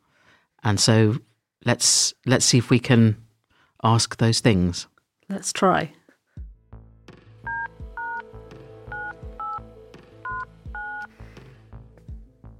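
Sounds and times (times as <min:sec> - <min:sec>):
speech: 0:00.6 - 0:03.2, 0:03.8 - 0:06.0
telephone keypad tones as a number is dialed: 0:07.5 - 0:08.2, 0:08.9 - 0:09.6, 0:10.3 - 0:11.1.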